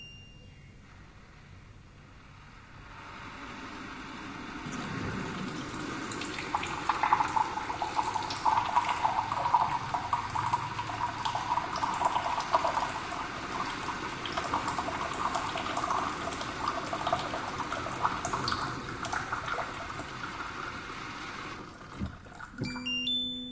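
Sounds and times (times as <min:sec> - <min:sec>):
water dispenser: 0:03.4 - 0:23.3.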